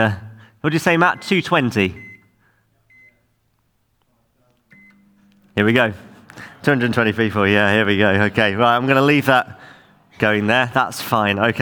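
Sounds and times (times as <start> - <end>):
speech: 0.0 - 2.0, 5.6 - 11.6
microwave oven keypad beeps being set: 1.0 - 3.4, 4.7 - 5.6.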